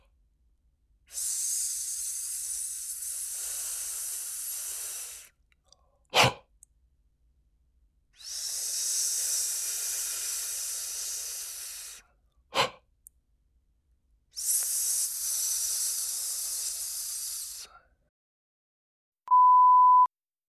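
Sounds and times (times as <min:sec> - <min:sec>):
long hissing s breathed out through the teeth as a breath-control exercise: 0:01.1 - 0:05.4, 0:08.2 - 0:12.0, 0:14.4 - 0:17.8
brief pure beep: 0:19.3 - 0:20.1.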